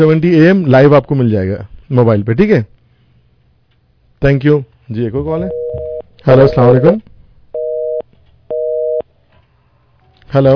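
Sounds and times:
speech: 0.0s - 2.7s, 4.2s - 7.1s, 10.3s - 10.5s
telephone busy tone beeps as a call drops: 5.4s - 7.0s, 7.6s - 9.0s.

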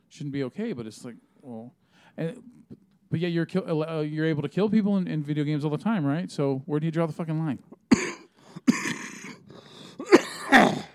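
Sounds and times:
speech: 0.1s - 7.8s
throat clearing: 7.8s - 10.9s
person coughing: 7.9s - 10.9s.

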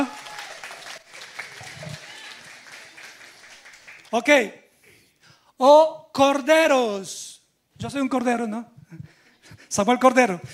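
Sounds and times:
audience applause: 0.0s - 4.2s
speech: 4.1s - 4.6s, 5.6s - 7.2s, 7.8s - 8.8s, 9.7s - 10.5s.

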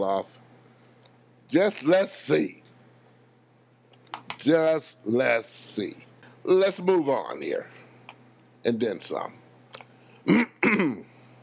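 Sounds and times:
speech: 0.0s - 0.5s, 1.5s - 2.6s, 4.4s - 7.8s, 8.6s - 9.4s, 10.3s - 11.1s
faint hum: 0.0s - 11.4s
rough gravelly throat clearing: 10.2s - 11.1s.

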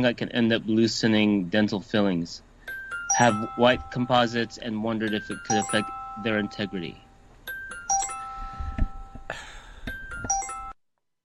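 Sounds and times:
speech: 0.0s - 2.5s, 3.2s - 7.0s
bright doorbell-like chimes: 2.7s - 10.8s.

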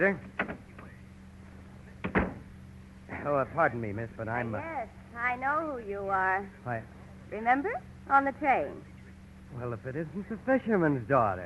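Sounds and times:
speech: 0.0s - 0.4s, 3.2s - 8.9s, 9.5s - 11.4s
faint steady hum: 0.0s - 11.4s
door to an adjoining office closing quietly: 0.2s - 1.0s, 1.9s - 2.5s.

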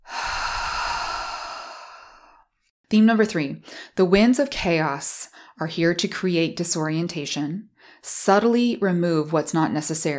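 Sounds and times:
person taking a long deep exhale: 0.0s - 2.4s
speech: 2.9s - 10.1s.

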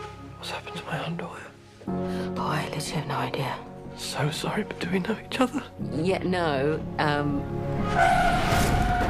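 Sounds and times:
speech: 0.4s - 8.8s
car skidding with a high tire squeal: 7.8s - 9.0s.

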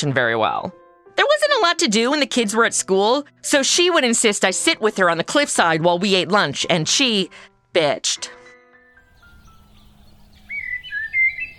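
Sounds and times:
speech: 0.0s - 8.4s
birds chirping: 9.0s - 11.5s.

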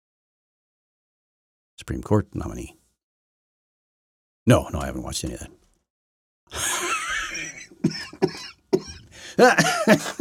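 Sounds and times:
speech: 1.8s - 2.8s, 4.5s - 5.6s, 6.5s - 6.9s, 7.8s - 10.1s
laughter: 6.5s - 10.1s
old man's harsh wheezing coughing fit: 7.4s - 10.1s.

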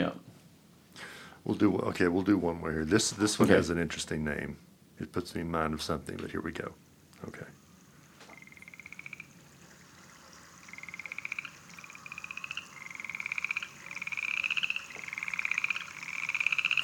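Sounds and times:
speech: 0.0s - 0.2s, 1.0s - 7.6s
soft hum: 0.0s - 16.8s
upland chorus frogs calling in raspy trills: 7.7s - 16.8s.

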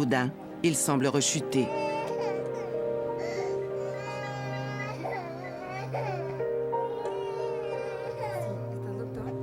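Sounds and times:
speech: 0.0s - 1.9s
feverish baby boy crying while recovering from chickenpox in Arlington Texas: 1.6s - 9.3s.

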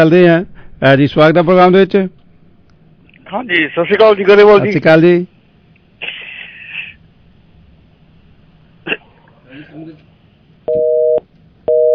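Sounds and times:
speech: 0.0s - 2.2s, 3.3s - 5.3s
busy tone on a phone call after the line drops: 10.7s - 11.9s.

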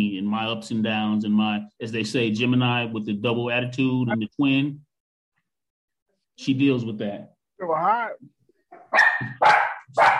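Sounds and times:
speech: 0.3s - 4.8s, 6.4s - 10.1s
dog barking: 8.7s - 10.1s.

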